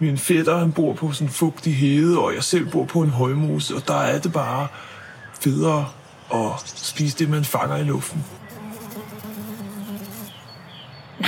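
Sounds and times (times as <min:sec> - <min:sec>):
speech: 0:00.0 - 0:08.6
fly buzzing: 0:08.2 - 0:10.5.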